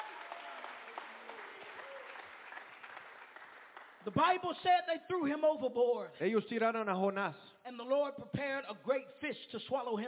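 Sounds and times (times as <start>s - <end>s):
audience clapping hands: 0.0s - 4.0s
speech: 4.0s - 10.0s.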